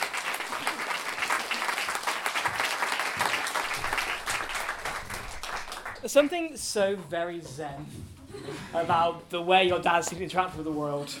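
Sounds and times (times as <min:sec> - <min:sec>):
crowd applause: 0:00.0 - 0:06.5
speech: 0:06.0 - 0:11.1.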